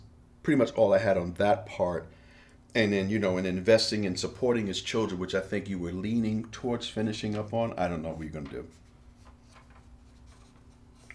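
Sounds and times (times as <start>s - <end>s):
faint steady hum: 0.0s - 11.1s
speech: 0.4s - 8.8s
pages being turned: 7.2s - 11.1s.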